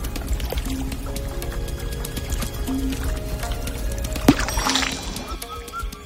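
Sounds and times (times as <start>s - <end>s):
water sloshing and splashing as a woman swims: 0.0s - 5.8s.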